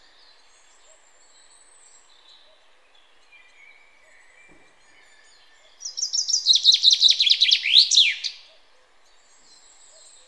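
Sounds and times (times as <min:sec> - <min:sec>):
common chaffinch Fringilla coelebs singing: 0:03.0 - 0:08.6.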